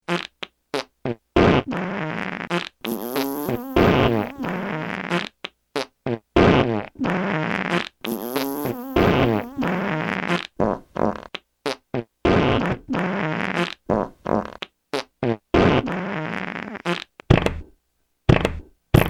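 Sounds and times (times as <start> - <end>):
farts: 0.1 - 17.7, 18.3 - 19.0.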